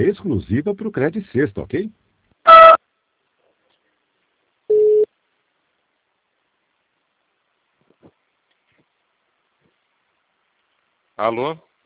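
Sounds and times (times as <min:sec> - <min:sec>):
speech: 0:00.0 - 0:02.7, 0:11.2 - 0:11.7
telephone line beeps while a call is transferred to an agent: 0:04.7 - 0:05.1.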